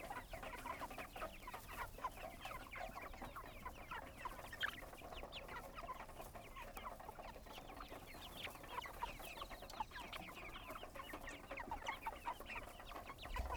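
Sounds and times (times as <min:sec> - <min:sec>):
flock of chickens clucking on a goat farm: 0:00.0 - 0:13.5.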